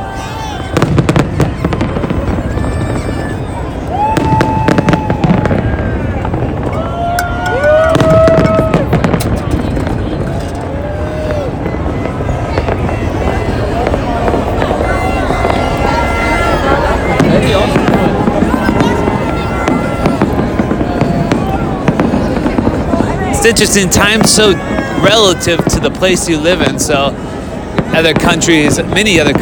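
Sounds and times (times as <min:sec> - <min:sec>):
fireworks crackling and popping outdoors: 0:00.0 - 0:29.4
speech: 0:23.4 - 0:27.2, 0:27.9 - 0:29.4.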